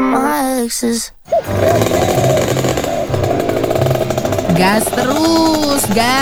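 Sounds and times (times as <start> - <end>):
speech: 0.3 - 2.6, 4.6 - 6.1
rare old vehicle engine revving roughly: 1.2 - 6.1.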